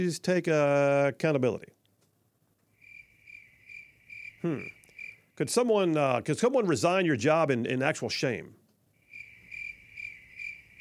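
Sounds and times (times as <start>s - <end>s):
speech: 0.0s - 1.8s, 4.4s - 4.8s, 5.4s - 8.6s
cricket chirping: 2.7s - 5.4s, 9.0s - 10.7s.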